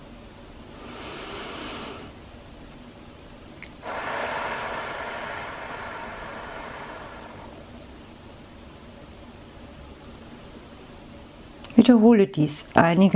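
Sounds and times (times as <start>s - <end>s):
forceful breathy exhale through the mouth in a deep breathing exercise: 0.7s - 2.2s, 3.8s - 8.2s
slow airy breath inhaled through the nose in a deep breathing exercise: 0.7s - 2.2s, 3.8s - 8.2s
speech: 11.8s - 13.1s.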